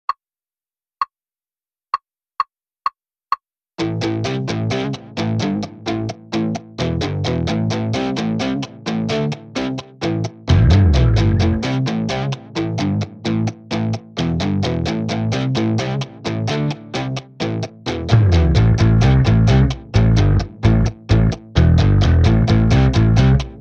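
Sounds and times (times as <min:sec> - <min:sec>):
rock music without drums: 0:03.8 - 0:23.5.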